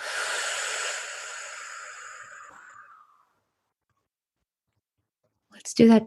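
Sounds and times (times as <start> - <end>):
deep breath in and out during guided breath work: 0.0 - 3.6.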